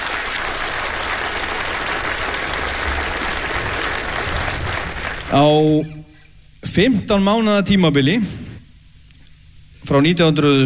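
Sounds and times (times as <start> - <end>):
audience applause: 0.0 - 5.7
speech: 5.3 - 6.0, 6.8 - 8.4, 9.9 - 10.6.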